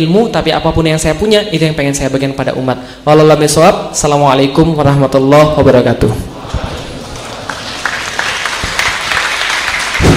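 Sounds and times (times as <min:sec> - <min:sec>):
speech: 0:00.0 - 0:06.3
audience applauding in a mosque after a religious lecture: 0:06.4 - 0:10.1.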